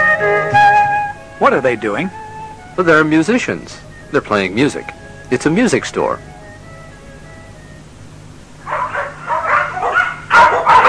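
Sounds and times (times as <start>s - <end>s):
low steady hum in a pet shop: 0.0s - 10.8s
speech: 1.4s - 2.2s, 2.8s - 6.3s
dog barking and yipping in a pet shop: 8.6s - 10.8s.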